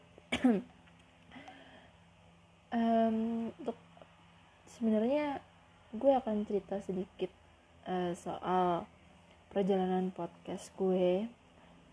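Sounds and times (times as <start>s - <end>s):
faint hum: 0.0s - 11.9s
cough: 0.3s - 0.7s
speech: 0.3s - 0.8s, 2.7s - 3.9s, 4.7s - 8.9s, 9.5s - 11.4s.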